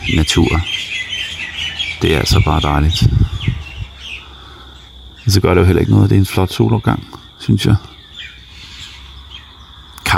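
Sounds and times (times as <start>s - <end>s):
birds chirping outdoors at sunrise: 0.0s - 10.1s
high sweeping calls: 0.0s - 10.1s
speech: 0.1s - 1.0s, 2.0s - 3.3s, 5.3s - 7.9s
soft low rumbling thumps: 2.0s - 4.1s.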